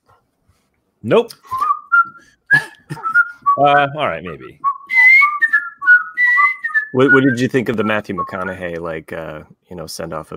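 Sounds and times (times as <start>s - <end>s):
speech: 1.0s - 1.6s, 3.6s - 4.7s, 6.9s - 10.3s
person whistling a tune: 1.4s - 3.9s, 4.6s - 8.5s.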